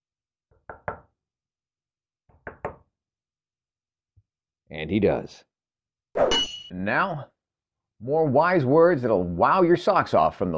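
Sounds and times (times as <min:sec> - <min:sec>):
knocking on a door: 0:00.5 - 0:01.1, 0:02.3 - 0:02.9
speech: 0:04.7 - 0:05.5, 0:06.2 - 0:07.4, 0:08.0 - 0:10.5.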